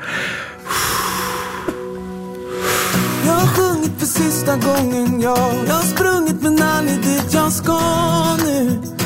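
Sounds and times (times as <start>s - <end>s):
deep breathing in and out: 0.0s - 3.8s
speech: 4.0s - 8.9s.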